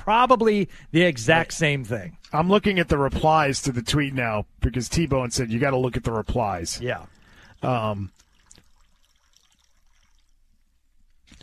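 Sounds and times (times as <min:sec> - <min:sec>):
speech: 0:00.0 - 0:08.2
water pouring in a soft trickle: 0:05.0 - 0:11.4.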